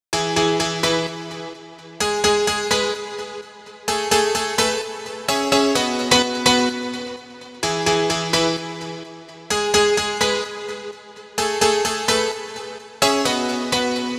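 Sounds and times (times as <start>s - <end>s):
piano in E at 128 BPM: 0.2s - 14.1s.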